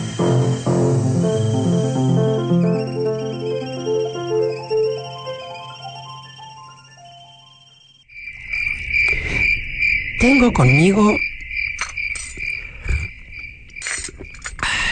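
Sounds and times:
loud shrill cricket-like trill: 0.0 - 14.9
gentle tinkling melody with low steady drone: 1.2 - 8.0
speech: 10.3 - 11.3.

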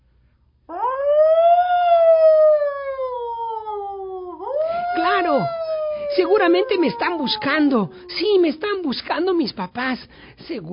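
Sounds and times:
fire engine siren wailing: 0.7 - 8.4
speech: 6.3 - 10.7.

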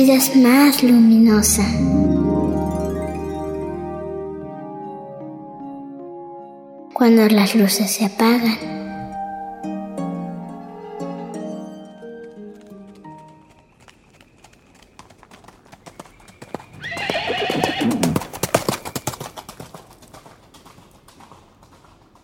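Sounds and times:
speech: 0.0 - 2.2, 7.0 - 8.8
sustained tonal notes: 1.0 - 6.9, 8.6 - 13.0
horse whinnying: 9.0 - 12.0, 16.8 - 18.3
horse hooves clip-clopping: 11.8 - 22.2.

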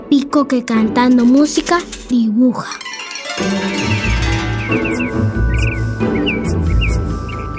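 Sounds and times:
speech: 0.1 - 4.0
full instrumental music with a deep pulsing bass: 3.0 - 7.3
bright bird chirps and tweets: 4.7 - 7.5.

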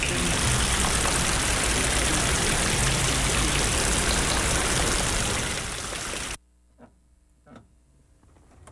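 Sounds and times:
dense steady rain: 0.0 - 6.4.

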